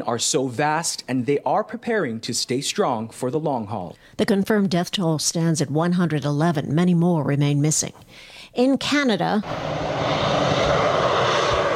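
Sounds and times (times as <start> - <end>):
speech: 0.0 - 10.6
firefighting airplane engine drone over wildfires: 9.4 - 11.7.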